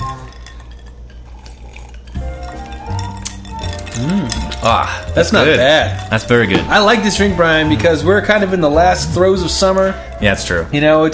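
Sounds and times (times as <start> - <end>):
light clattering of glassware: 0.0 - 7.2
soft liquid sloshing: 0.0 - 11.0
drinking glasses of cocktail with Brazilian rum clinking in a toast: 0.0 - 11.1
speech: 4.0 - 11.1.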